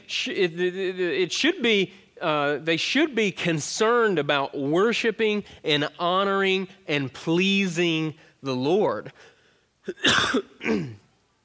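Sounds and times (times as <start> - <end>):
speech: 0.1 - 11.0
man clearing his throat with rasping gravelly sound: 9.9 - 11.1
man coughing: 9.9 - 11.1.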